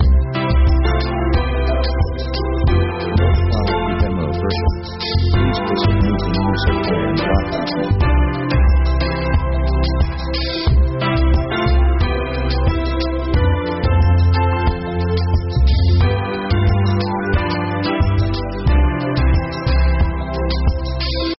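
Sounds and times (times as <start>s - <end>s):
easy listening highlife music: 0.0s - 21.3s.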